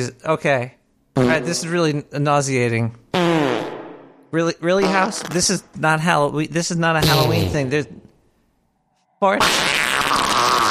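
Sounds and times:
speech: 0:00.0 - 0:03.6, 0:04.3 - 0:08.0, 0:09.2 - 0:09.7
loud raspy fart in a Halloween-themed house: 0:01.2 - 0:01.6, 0:03.1 - 0:04.2, 0:04.8 - 0:05.6, 0:09.3 - 0:10.6.

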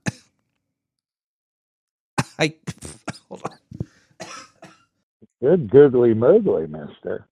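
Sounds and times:
person coughing: 0:00.0 - 0:00.2, 0:02.2 - 0:04.8
speech: 0:02.4 - 0:03.6, 0:05.4 - 0:07.3.

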